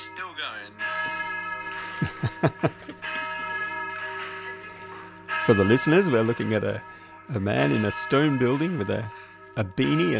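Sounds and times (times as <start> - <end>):
church bells rung by pulling rope: 0.0 - 10.1
speech: 0.2 - 1.2, 2.0 - 2.9, 5.5 - 10.1
laughter: 1.0 - 4.6.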